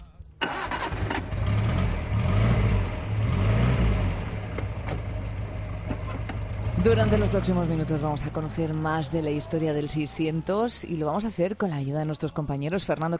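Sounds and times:
small SEAT 600 car engine revving and idling: 0.4 - 10.5
speech: 6.8 - 13.1.

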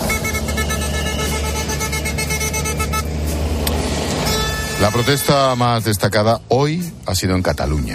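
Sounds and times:
horns honking in long sustained honks: 0.0 - 6.0
heavy traffic of tractors with deep engines droning: 0.0 - 7.9
speech: 4.8 - 7.9.

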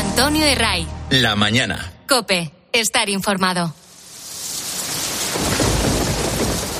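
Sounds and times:
speech: 0.2 - 3.8
steady rain: 3.8 - 6.7
deep rumble of thunder: 4.8 - 6.7.

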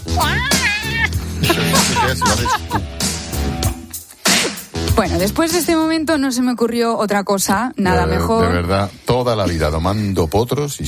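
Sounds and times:
cat yowling: 0.2 - 1.2
laughter: 0.3 - 3.0
speech: 1.5 - 3.1, 5.0 - 10.8.

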